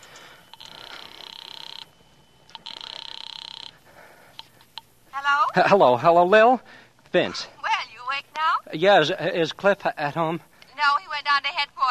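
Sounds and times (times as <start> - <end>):
telephone ringing on the line through a receiver: 0.0 - 5.5
speech: 5.6 - 7.6, 8.7 - 10.5, 11.3 - 11.8.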